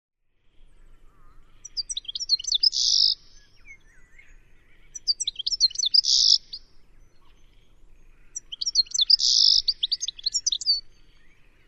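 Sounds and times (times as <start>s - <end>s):
bird twittering chatter: 1.1s - 7.4s, 8.2s - 10.9s.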